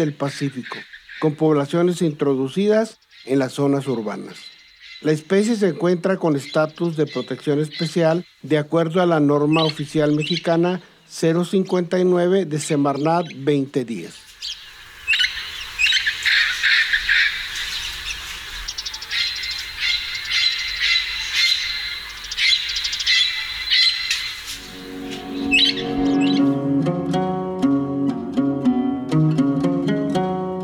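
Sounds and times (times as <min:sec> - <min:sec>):
harsh repeated bird squawking calls: 0:00.0 - 0:02.0, 0:02.9 - 0:08.5, 0:09.4 - 0:10.7, 0:12.9 - 0:26.6
speech: 0:00.0 - 0:14.6
melodic music: 0:24.5 - 0:30.6.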